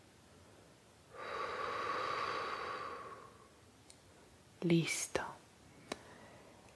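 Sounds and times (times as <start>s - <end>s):
slow airy breath in and out through the mouth during a breathing exercise: 1.2s - 3.5s
speech: 4.6s - 5.2s.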